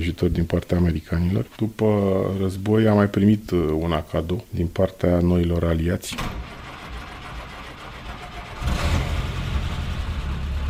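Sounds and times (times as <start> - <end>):
speech: 0.0 - 6.4
jeep engine revving: 6.8 - 10.6.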